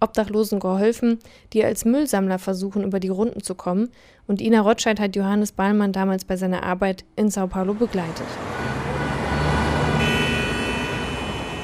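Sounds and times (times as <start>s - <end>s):
speech: 0.0s - 8.7s
engines rumbling in busy downtown street traffic in Sao Paulo: 7.5s - 11.6s
high whine or beep-like tone: 8.2s - 11.6s.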